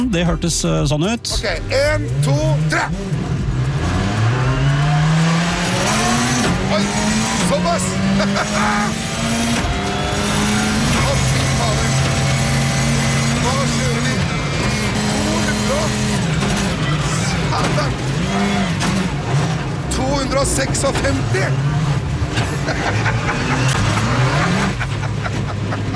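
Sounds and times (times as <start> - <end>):
speech: 0.0 - 3.3, 6.7 - 9.6, 20.1 - 21.7, 22.6 - 24.2
rally car engine revving at high speed through gear changes: 0.0 - 25.9
laughter: 7.7 - 9.3, 22.4 - 25.9.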